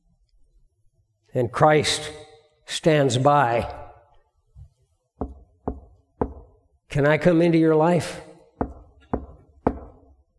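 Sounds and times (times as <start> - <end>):
speech: 1.3 - 3.8, 6.9 - 8.3
knocking on a door: 5.2 - 6.6, 8.6 - 10.1.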